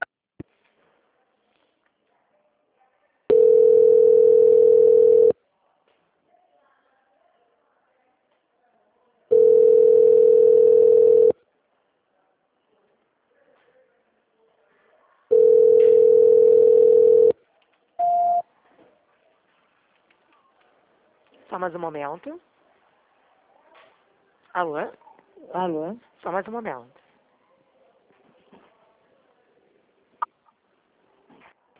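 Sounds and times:
telephone beeps during a call transfer: 0:03.3 - 0:05.3, 0:09.3 - 0:11.4, 0:15.3 - 0:17.4, 0:18.0 - 0:18.4
speech: 0:21.6 - 0:22.6, 0:24.5 - 0:27.0.

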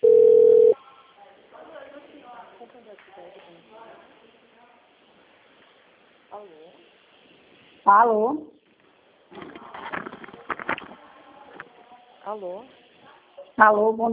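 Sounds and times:
telephone dial tone on an outgoing call: 0:00.0 - 0:00.8
people talking quietly: 0:00.0 - 0:14.1
speech: 0:07.8 - 0:08.5, 0:12.3 - 0:12.8, 0:13.6 - 0:14.1.

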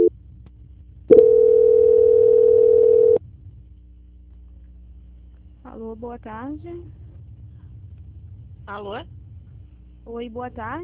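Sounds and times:
telephone tone as a call is being transferred: 0:01.1 - 0:03.2
speech: 0:06.0 - 0:07.0, 0:08.7 - 0:09.2, 0:10.0 - 0:10.8.

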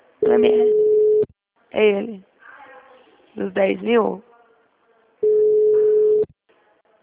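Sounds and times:
telephone ringing tone while placing a call: 0:00.2 - 0:01.3, 0:05.2 - 0:06.3
speech: 0:00.3 - 0:00.8, 0:01.7 - 0:02.3, 0:03.4 - 0:04.3.

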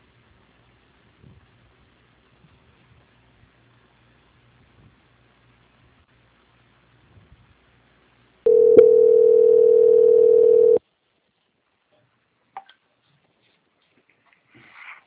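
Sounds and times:
telephone line tone while a call connects: 0:08.5 - 0:10.8.

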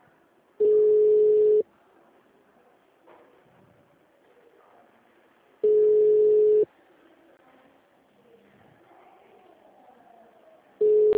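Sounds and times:
faint noise: 0:00.0 - 0:11.1
ringing tone of an unanswered telephone call: 0:00.6 - 0:01.6, 0:05.6 - 0:06.6, 0:10.8 - 0:11.1.

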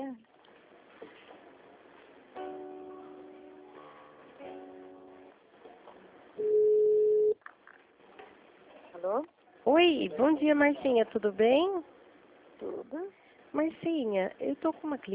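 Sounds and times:
layered electronic telephone tones during call transfer: 0:06.4 - 0:07.4
speech: 0:09.1 - 0:11.9, 0:13.6 - 0:15.1.

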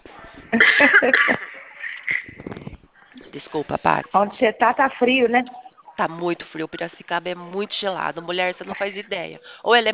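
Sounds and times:
speech: 0:00.5 - 0:01.4, 0:03.6 - 0:09.9
harsh coughing: 0:00.6 - 0:01.6.

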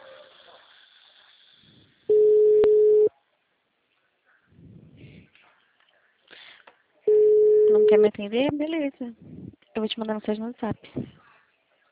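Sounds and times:
telephone busy tone after call hung up: 0:02.1 - 0:03.1
speech: 0:07.9 - 0:11.0.

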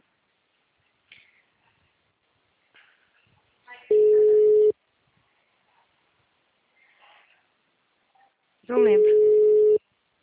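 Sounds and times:
telephone busy signal beep: 0:03.9 - 0:04.7, 0:08.9 - 0:09.8
speech: 0:08.7 - 0:09.2.

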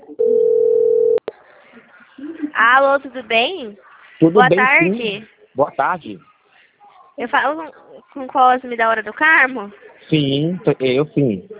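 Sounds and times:
telephone dial tone while placing a call: 0:00.2 - 0:01.2
speech: 0:02.6 - 0:06.3, 0:07.2 - 0:11.5.

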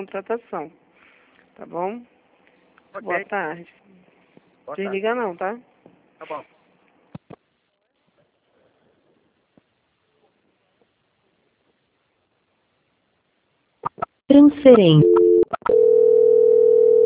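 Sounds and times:
speech: 0:00.0 - 0:00.8, 0:01.6 - 0:02.2, 0:02.9 - 0:04.0, 0:04.7 - 0:06.5, 0:14.4 - 0:15.4
steady unbroken telephone tone during a call transfer: 0:15.0 - 0:17.0.

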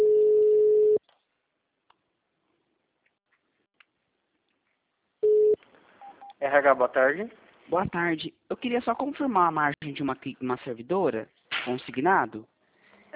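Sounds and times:
call-transfer beeps on a phone line: 0:00.0 - 0:01.0, 0:05.2 - 0:06.3
speech: 0:06.4 - 0:12.5.

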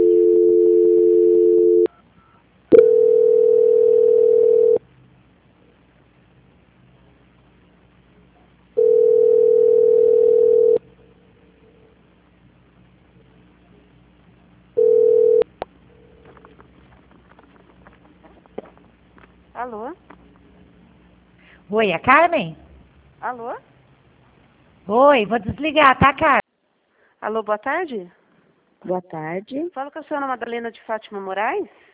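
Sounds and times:
telephone line beeps while a call is being transferred: 0:00.0 - 0:04.8, 0:08.8 - 0:10.8, 0:14.8 - 0:15.5
speech: 0:21.8 - 0:22.6, 0:23.2 - 0:23.7, 0:24.9 - 0:26.4, 0:27.3 - 0:28.2, 0:28.8 - 0:31.8.

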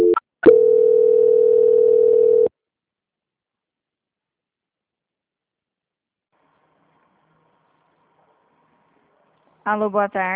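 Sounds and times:
steady single-pitch telephone call-transfer tone: 0:00.0 - 0:02.5
speech: 0:09.7 - 0:10.3.

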